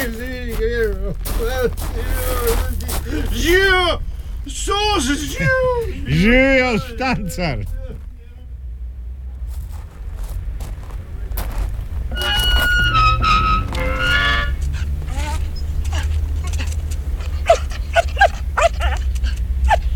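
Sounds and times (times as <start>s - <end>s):
laughter: 0.0s - 8.4s, 12.1s - 19.9s
steady low rumble: 0.0s - 19.9s
speech: 1.0s - 7.8s
tied-up dog whimpering in front of a house: 12.1s - 19.9s
tied-up dog giving sharp yappy barks in front of a house: 14.7s - 19.9s.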